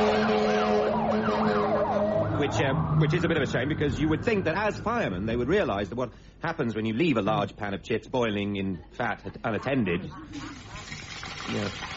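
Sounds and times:
fire engine siren wailing: 0:00.0 - 0:05.6
speech: 0:02.5 - 0:11.9.

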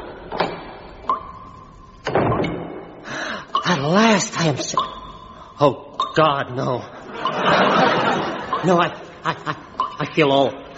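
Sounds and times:
door thud and rattle as the door swings open: 0:02.1 - 0:02.8
speech: 0:03.7 - 0:05.0, 0:05.6 - 0:10.7
laughter: 0:06.9 - 0:09.8.

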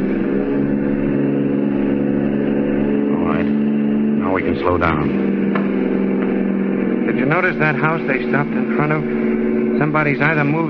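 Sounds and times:
car engine humming as the car drives past: 0:00.0 - 0:10.6
speech: 0:04.4 - 0:05.4, 0:07.2 - 0:10.6.

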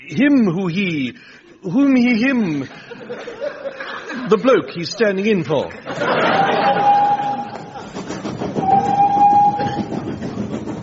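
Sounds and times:
speech: 0:00.1 - 0:06.7
laughter: 0:02.7 - 0:04.4, 0:05.8 - 0:08.1
person imitating a train with long steady whistle-like toots: 0:06.4 - 0:08.0, 0:08.6 - 0:10.3
person imitating a train with breathy chugging: 0:06.4 - 0:10.8.

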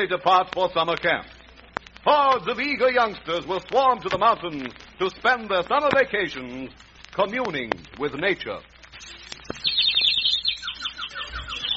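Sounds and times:
speech: 0:00.0 - 0:01.4, 0:02.0 - 0:09.6
quiet outdoor noise: 0:00.0 - 0:11.7
small bird chirping in a tree: 0:09.0 - 0:11.7.

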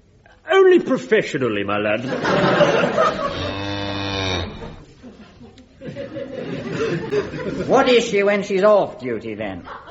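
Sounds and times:
speech: 0:00.7 - 0:03.6, 0:07.1 - 0:09.8
laughter: 0:02.0 - 0:03.6, 0:04.6 - 0:08.0, 0:09.5 - 0:09.8
cow giving a long drawn-out moo: 0:03.2 - 0:04.8.

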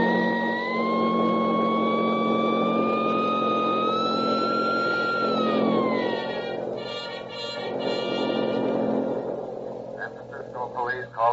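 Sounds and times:
Studebaker sedan revving and pulling away toward the west gate: 0:00.0 - 0:10.1
sedan siren wailing: 0:00.0 - 0:10.3
voices: 0:09.8 - 0:11.3.

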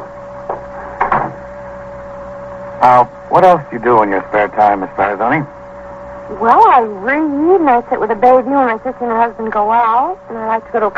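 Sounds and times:
steady low hum: 0:00.0 - 0:10.9
door swinging shut with light wooden knock: 0:01.0 - 0:01.4
speech: 0:02.8 - 0:05.6, 0:06.3 - 0:10.9.

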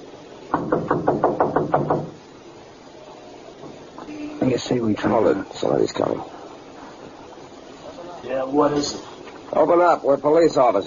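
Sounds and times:
firm knocking on a wooden door: 0:00.5 - 0:02.2
speech: 0:04.5 - 0:06.4, 0:08.5 - 0:10.8.

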